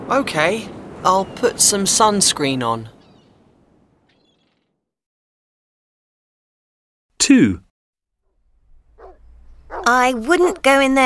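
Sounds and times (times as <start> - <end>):
speech: 0.1 - 3.0, 7.2 - 7.7, 9.8 - 11.0
dog barking: 9.0 - 10.6.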